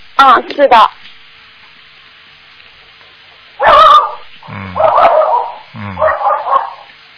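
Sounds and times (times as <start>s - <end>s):
speech: 0.2s - 1.0s
small dog barking through a phone line: 3.6s - 6.9s.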